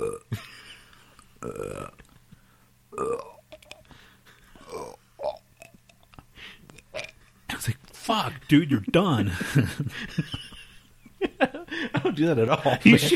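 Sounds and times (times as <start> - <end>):
long drawn-out burp: 0.0 - 0.4, 1.4 - 2.0, 2.9 - 3.8, 4.6 - 5.8, 6.9 - 7.2
speech: 8.1 - 10.5, 12.0 - 13.1
laughter: 8.3 - 13.1.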